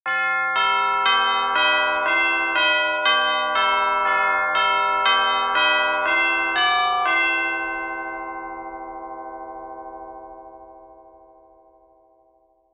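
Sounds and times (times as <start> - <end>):
large church bells ringing chimes at a wedding: 0.1 - 11.9.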